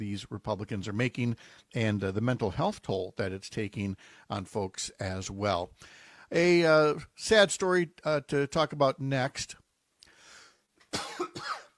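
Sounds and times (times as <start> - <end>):
speech: 0.0 - 9.6
person coughing: 10.9 - 11.7.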